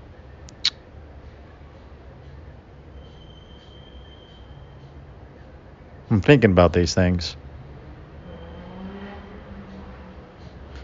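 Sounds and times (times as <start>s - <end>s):
speech: 6.1s - 7.5s
motorcycle engine revving: 7.7s - 10.5s.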